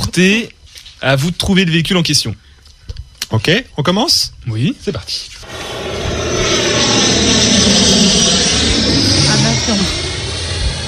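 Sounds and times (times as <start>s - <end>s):
speech: 0.2s - 2.5s, 3.3s - 5.6s, 6.5s - 8.6s, 9.6s - 10.0s
airplane engine roaring: 5.4s - 10.8s.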